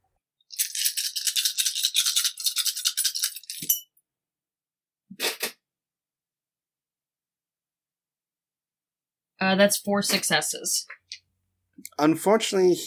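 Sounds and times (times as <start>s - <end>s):
dice rattling during a tabletop role-playing game roll: 0.5s - 3.6s
speech: 9.4s - 11.0s, 11.9s - 12.8s.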